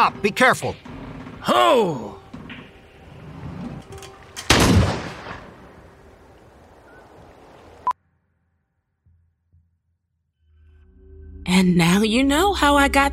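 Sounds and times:
speech: 0:00.0 - 0:02.2, 0:11.5 - 0:13.1
gunshot blast with a rumbling tail: 0:04.5 - 0:05.6.

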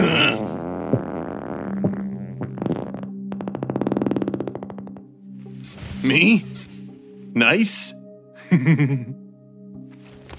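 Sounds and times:
long loud bubbling fart: 0:00.0 - 0:05.2
speech: 0:06.0 - 0:06.5, 0:07.4 - 0:09.2.

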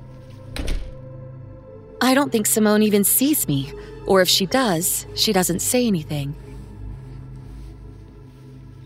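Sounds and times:
door shutting with a dull solid thunk: 0:00.2 - 0:01.1
speech: 0:02.0 - 0:06.5.

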